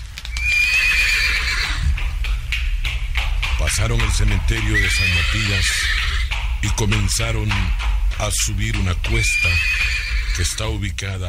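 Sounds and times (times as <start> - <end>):
faint clopping hooves: 0.0 - 11.2
horse neighing: 0.4 - 1.9, 4.7 - 6.3, 9.1 - 10.6
steady low rumble: 1.1 - 11.2
speech: 3.7 - 6.0, 6.6 - 11.2.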